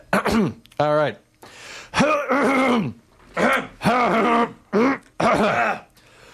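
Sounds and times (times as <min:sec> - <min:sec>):
radio host clearing throat into a microphone: 0:00.0 - 0:00.6, 0:02.0 - 0:05.9
speech: 0:00.3 - 0:01.2, 0:02.0 - 0:05.8.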